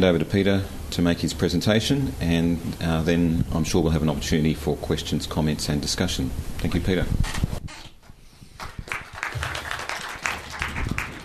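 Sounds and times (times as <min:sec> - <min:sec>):
speech: 0:00.0 - 0:07.6
audience applause: 0:08.6 - 0:11.2.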